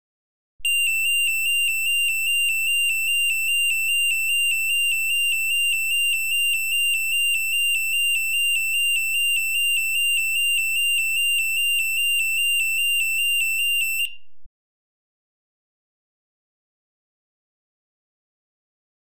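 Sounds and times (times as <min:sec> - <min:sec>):
car alarm: 0:00.6 - 0:14.2.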